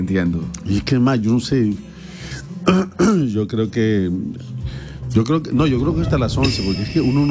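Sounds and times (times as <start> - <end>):
speech: 0.0 - 1.9, 2.6 - 7.2
person clearing throat: 2.6 - 3.3
short cough: 2.6 - 3.3.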